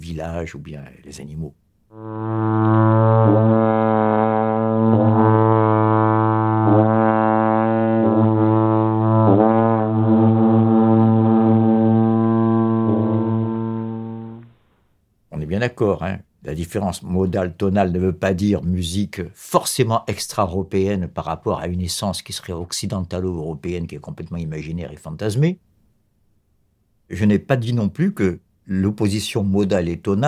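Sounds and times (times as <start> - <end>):
speech: 0.1 - 2.9, 16.5 - 25.6, 27.1 - 30.2
long mountain horn blowing a deep brassy drone: 1.9 - 14.7.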